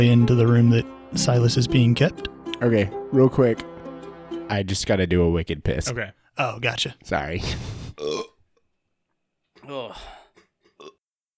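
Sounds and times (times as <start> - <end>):
speech: 0.0 - 3.7, 4.5 - 8.3, 9.6 - 10.2
person burping after drinking fizzy water: 7.8 - 8.4, 9.6 - 11.0.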